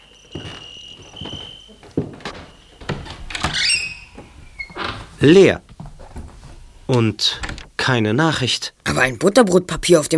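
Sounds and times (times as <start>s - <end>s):
crickets chirping: 0.0s - 4.9s
door opening: 0.4s - 7.8s
speech: 5.2s - 5.7s, 6.9s - 10.1s.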